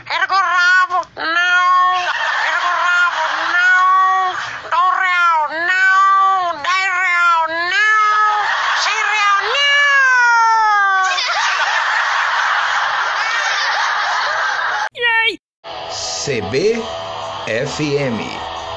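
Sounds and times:
person imitating a male cat courting, meowing and caterwauling: 0.1s - 2.1s, 2.7s - 11.1s
laughter: 1.7s - 4.9s, 8.0s - 14.9s
speech: 16.3s - 18.5s.

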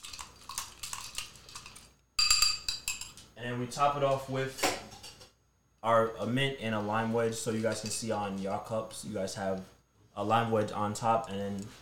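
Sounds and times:
spoon clinking against a glass while stirring a rum cocktail: 2.2s - 3.2s
speech: 3.4s - 4.8s, 5.8s - 11.8s.

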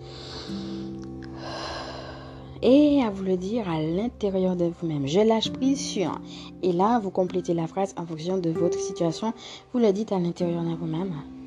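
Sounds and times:
long deep breath drawn in through the nose: 0.0s - 2.6s
speech: 2.6s - 11.4s.

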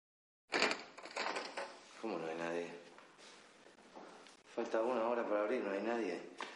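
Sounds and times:
restaurant door rattling and scraping as it opens: 0.5s - 1.9s
clattering and rustling as the restaurant door swings: 0.5s - 2.0s
speech: 2.0s - 2.9s, 4.6s - 6.4s.

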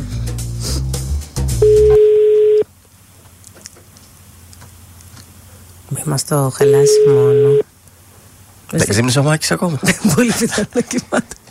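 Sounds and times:
ringback tone from an outgoing phone call: 1.6s - 2.6s, 6.6s - 7.6s
speech: 6.1s - 7.7s, 8.7s - 11.4s
laughter: 9.7s - 11.4s.

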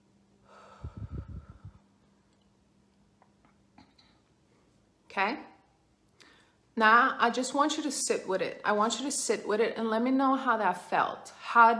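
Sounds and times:
deep breath in and out: 0.4s - 1.9s
speech: 5.2s - 5.5s, 6.8s - 11.7s.

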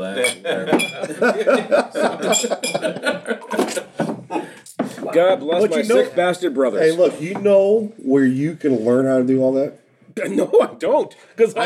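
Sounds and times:
speech: 0.0s - 3.5s, 5.2s - 11.6s
empty glass clinking and tapping: 0.2s - 1.1s, 2.2s - 2.9s
laughter: 0.4s - 4.6s.

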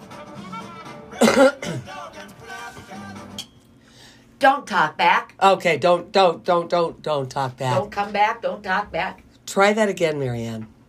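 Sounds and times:
room noise: 0.0s - 10.8s
throat clearing: 1.2s - 1.9s
person coughing: 1.2s - 2.0s
speech: 1.4s - 1.8s, 4.4s - 10.7s.

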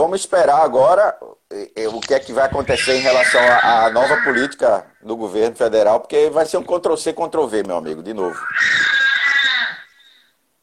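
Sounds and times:
speech: 0.0s - 9.0s
shrill sustained scream trailing into a thin wail: 2.6s - 4.7s, 8.3s - 10.3s.

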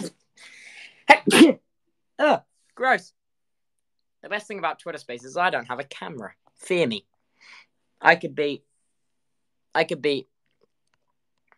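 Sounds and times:
sneeze: 1.1s - 1.6s
speech: 1.1s - 1.6s, 2.8s - 3.2s, 4.2s - 8.7s, 9.8s - 10.3s.

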